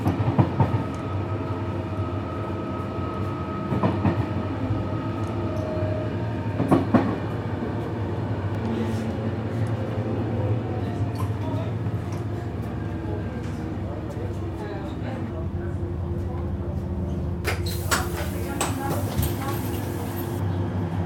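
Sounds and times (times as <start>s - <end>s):
train carriage rumble and hum on an evening ride: 0.0s - 21.0s
faint voices in a train compartment: 8.7s - 20.4s.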